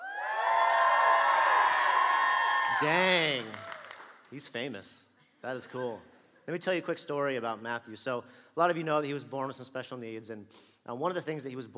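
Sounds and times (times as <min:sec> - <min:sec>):
large crowd screaming and cheering loudly: 0:00.0 - 0:03.2
speech: 0:02.8 - 0:03.7, 0:04.3 - 0:11.7.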